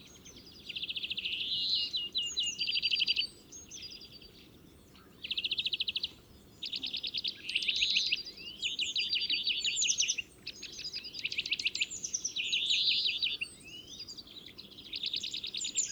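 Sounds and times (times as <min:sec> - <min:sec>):
European greenfinch singing: 0:00.0 - 0:15.9.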